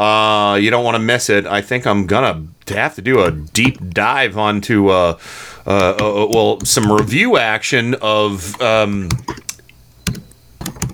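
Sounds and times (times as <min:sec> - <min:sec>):
speech: 0:00.0 - 0:09.4
typing on a computer keyboard: 0:05.8 - 0:07.2, 0:09.0 - 0:10.9.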